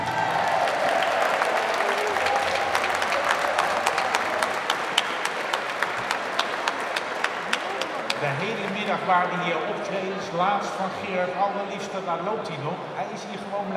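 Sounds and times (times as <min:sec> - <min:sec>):
audience applause at an open house event: 0:00.0 - 0:09.8
speech: 0:08.4 - 0:13.7.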